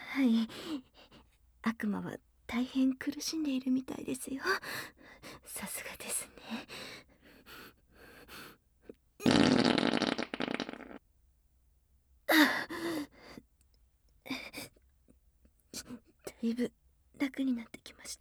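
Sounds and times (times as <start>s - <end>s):
speech: 0.2s - 0.9s, 1.6s - 6.8s, 16.4s - 18.1s
long loud raspy fart from a young woman: 9.2s - 11.0s
strained sigh-like vocal burst: 9.2s - 11.0s.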